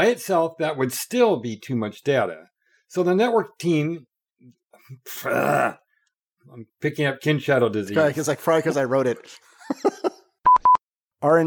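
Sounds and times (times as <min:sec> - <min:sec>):
speech: 0:00.0 - 0:05.8, 0:06.5 - 0:10.2, 0:11.2 - 0:11.4
person grunting after swallowing something wrong: 0:05.1 - 0:05.8
laughter: 0:09.5 - 0:10.3.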